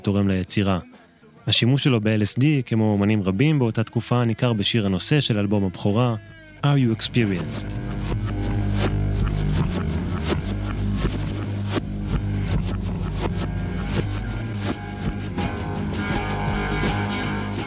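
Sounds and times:
speech: 0.0s - 0.9s, 1.5s - 9.0s
reversed rock guitars over a single sustained chord: 5.7s - 17.6s
reversed rock drums: 7.1s - 17.6s.

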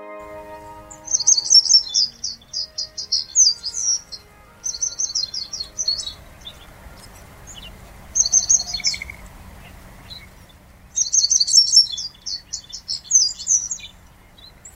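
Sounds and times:
Japanese wagtail singing on stones at Lake Kitaura shore in Ibaraki Prefecture, Japan: 0.0s - 14.7s
low steady background of water or wind: 0.3s - 14.7s.

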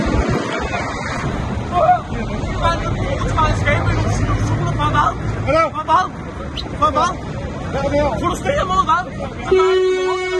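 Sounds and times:
busy street traffic noise at blocked motorway exit: 0.0s - 10.3s
overlapping voices and crowd hubbub: 0.0s - 10.3s
speech: 6.8s - 10.0s
loud sustained car horn blaring: 9.4s - 10.3s.

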